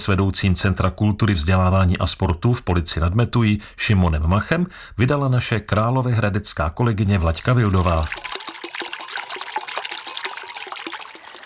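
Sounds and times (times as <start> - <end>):
speech: 0.0 - 8.4
water babbling past small metal water mill: 7.0 - 11.4.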